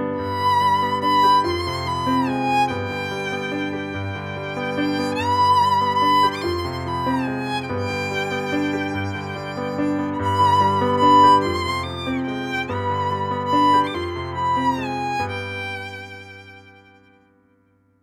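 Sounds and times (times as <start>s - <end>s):
violin wail: 0.2s - 17.1s.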